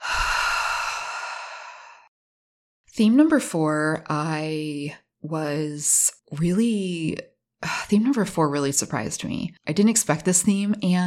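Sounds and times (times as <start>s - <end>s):
deep breathy exhale in a breathing exercise: 0.0s - 2.1s
speech: 3.0s - 11.0s.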